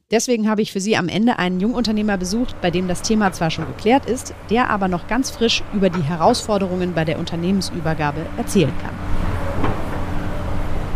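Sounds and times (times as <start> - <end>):
speech: 0.1 - 9.2
large excavator diesel engine droning while loading clay-pit earth into a truck: 1.4 - 10.9.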